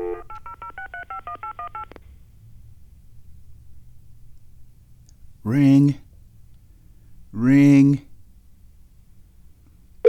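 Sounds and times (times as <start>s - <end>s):
telephone touch-tone keypad beeps: 0.0s - 1.9s
speech: 5.4s - 6.0s.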